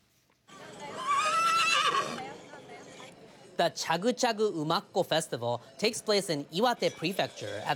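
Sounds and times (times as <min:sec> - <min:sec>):
colorfully clad horse whinnying at a traditional early-summer festival in Iwate Prefecture: 0:00.9 - 0:02.2
speech: 0:03.6 - 0:07.7.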